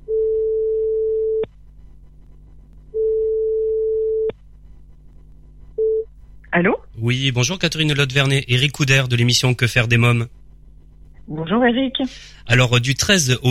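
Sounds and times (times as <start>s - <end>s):
telephone line tone while placing a phone call: 0.0s - 1.5s, 3.0s - 4.3s
speech: 6.6s - 10.4s, 11.3s - 13.4s.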